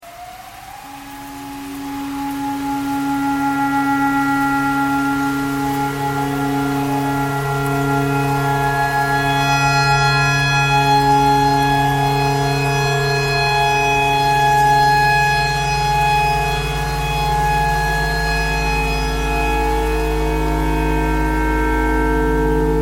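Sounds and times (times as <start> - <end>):
tornado siren: 0.0 - 22.8
clarinet playing pentatonic: 0.8 - 22.8.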